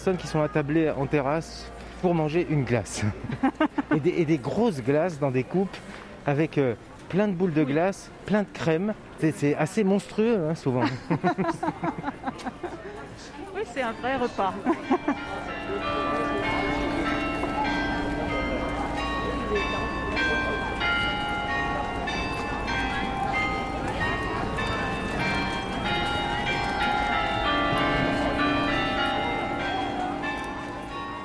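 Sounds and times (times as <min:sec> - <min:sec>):
speech: 0:00.0 - 0:16.2
faint street bustle: 0:00.0 - 0:31.2
laughter: 0:03.0 - 0:04.1, 0:10.8 - 0:13.1, 0:14.6 - 0:15.5
carillon bells chiming a melody over a town: 0:13.8 - 0:31.2.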